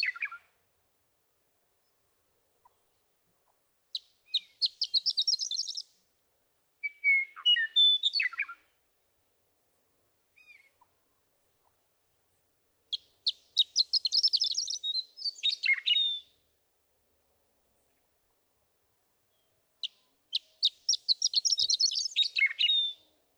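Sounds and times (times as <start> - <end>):
western meadowlark singing: 3.9 - 6.0, 6.8 - 8.8, 12.3 - 16.5, 19.2 - 23.3.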